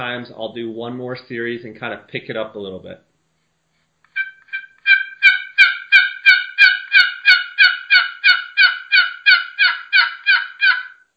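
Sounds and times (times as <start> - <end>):
speech: 0.0 - 3.1
turkey box call yelping like a hen: 4.1 - 11.1.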